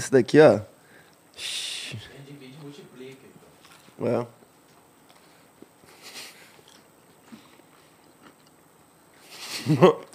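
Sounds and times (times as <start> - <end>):
speech: 0.0 - 0.7, 1.4 - 2.1, 4.0 - 4.4, 9.6 - 10.1
faint scattered crunches and rustles: 2.5 - 8.6
people chewing burgers at lunchtime: 3.4 - 10.1
laughter: 9.3 - 10.1.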